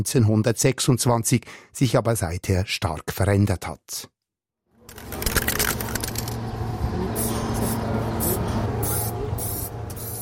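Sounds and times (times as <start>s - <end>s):
speech: 0.0s - 4.1s
steady low hum of noise: 4.8s - 10.2s
spray can spraying paint onto a wall: 7.2s - 10.2s.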